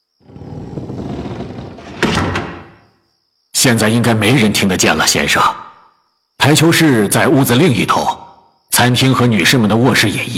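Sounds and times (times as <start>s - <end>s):
house door to the hall being pushed shut: 0.2s - 2.9s
speech: 3.6s - 5.6s, 6.4s - 8.2s, 8.8s - 10.3s.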